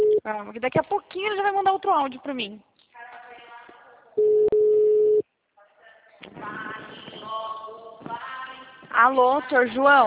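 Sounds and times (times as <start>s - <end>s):
phone busy tone after a dropped call: 0.0s - 0.2s, 4.2s - 5.2s
speech: 0.2s - 2.7s, 4.2s - 4.5s, 8.9s - 10.0s.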